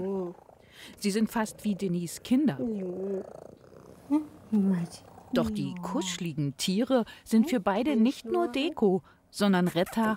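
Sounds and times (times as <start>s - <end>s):
domestic cat purring: 0.0s - 6.5s
speech: 0.0s - 10.1s.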